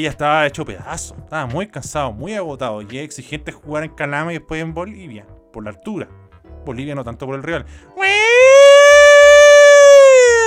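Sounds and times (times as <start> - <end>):
speech: 0.0 - 8.4
loud siren wail: 8.0 - 10.4.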